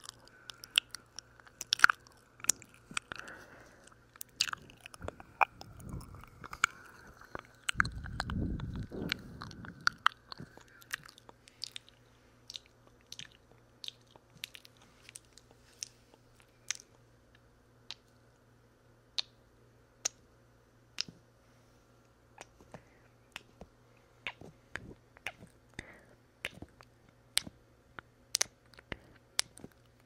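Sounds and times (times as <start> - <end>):
wet mouth sounds: 0.0 - 16.0, 24.2 - 25.6
faint low hum: 0.0 - 30.0
low thumps: 7.7 - 10.6.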